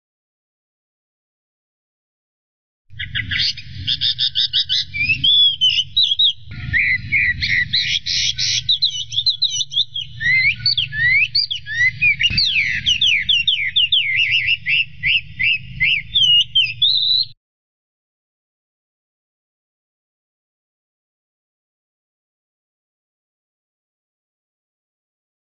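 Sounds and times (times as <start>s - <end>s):
steady low hum: 2.9s - 16.8s
Chinese hwamei singing loud varied song: 2.9s - 17.4s.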